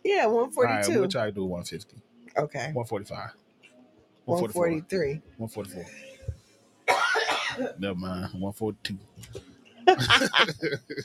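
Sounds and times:
speech: 0.1s - 3.4s, 4.2s - 6.2s, 7.6s - 11.0s
laughter: 0.6s - 1.4s, 7.8s - 11.0s
person making throaty voiced sounds: 0.6s - 1.8s, 2.8s - 3.3s, 4.3s - 4.8s, 7.7s - 9.0s, 10.0s - 11.0s.

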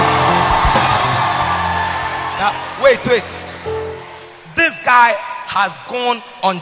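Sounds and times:
deeper yells: 0.0s - 4.0s
large church audience shouting and whooping for the Lord: 0.0s - 4.3s
speech: 2.4s - 3.4s, 4.9s - 6.5s.

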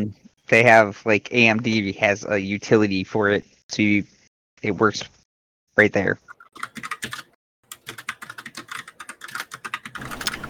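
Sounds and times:
speech: 0.0s - 5.2s, 5.8s - 7.3s
fast typing on a computer keyboard: 6.5s - 10.4s.

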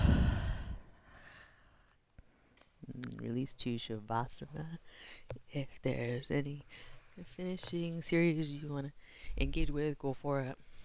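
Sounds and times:
deep breath exhaled through an open mouth at the end of a yoga practice: 0.0s - 1.6s
speech: 3.0s - 10.7s.

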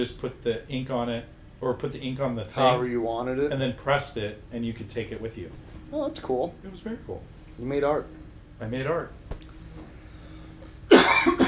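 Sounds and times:
speech: 0.0s - 9.4s
harsh chesty cough: 10.9s - 11.4s.

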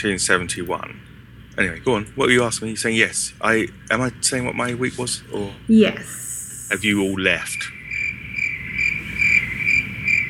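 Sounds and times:
speech: 0.0s - 7.8s
low hum: 0.0s - 10.2s
crickets chirping in a high pulsing trill: 6.6s - 10.2s.

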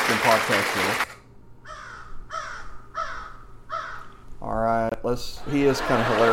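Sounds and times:
low hum: 0.0s - 6.3s
speech: 0.1s - 1.1s, 4.4s - 6.3s
crow cawing: 1.6s - 4.3s
laughter: 5.4s - 6.3s.

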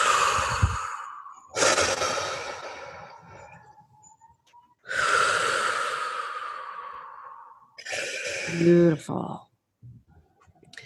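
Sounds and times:
slow deep breaths in and out: 0.0s - 3.8s, 4.8s - 8.6s
speech: 8.6s - 9.5s.

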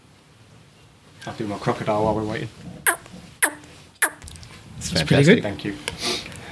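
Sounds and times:
speech: 1.2s - 2.7s, 4.8s - 6.2s
person imitating a brown tree frog call: 2.9s - 4.4s.

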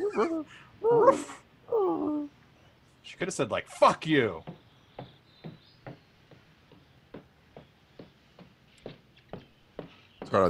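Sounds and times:
woman imitating dog barks: 0.0s - 2.3s
speech: 0.2s - 1.4s, 3.1s - 4.6s.

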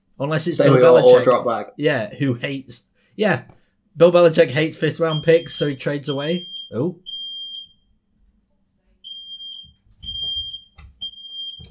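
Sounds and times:
speech: 0.2s - 7.1s
shrill high-pitched home fire alarm beeping: 5.1s - 7.8s, 9.0s - 11.6s.

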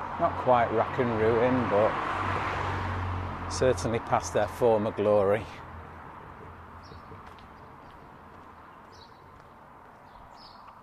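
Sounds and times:
low outdoor rumble of traffic: 0.0s - 10.8s
speech: 0.2s - 2.5s, 3.5s - 5.6s
bird chirps outdoors on a British summer day: 6.8s - 10.8s.

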